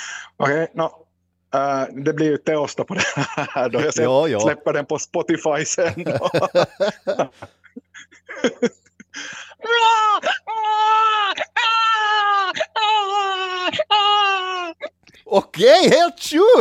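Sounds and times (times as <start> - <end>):
speech: 0.4 - 12.7, 15.3 - 16.5
laughter: 2.9 - 4.5, 5.7 - 8.9
person imitating a crying baby: 9.6 - 15.8.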